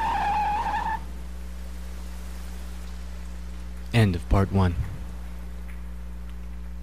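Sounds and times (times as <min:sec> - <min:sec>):
car tires squealing as it speeds off: 0:00.0 - 0:01.1
speech: 0:04.0 - 0:04.9.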